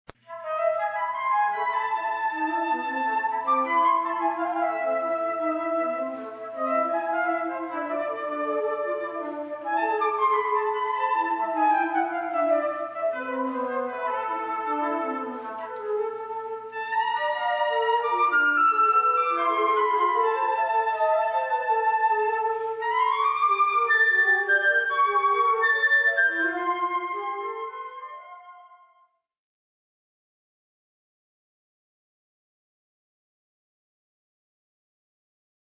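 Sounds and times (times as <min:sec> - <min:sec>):
two flutes playing: 0:00.3 - 0:28.8.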